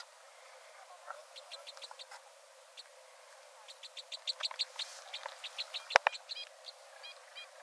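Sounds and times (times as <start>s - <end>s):
faint background hiss: 0.0s - 7.6s
two-barred crossbill chip calls: 1.1s - 3.0s, 3.6s - 7.6s.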